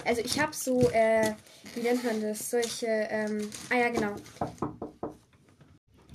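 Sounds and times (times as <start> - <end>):
speech: 0.0 - 4.8
knocking on a door: 4.0 - 5.2.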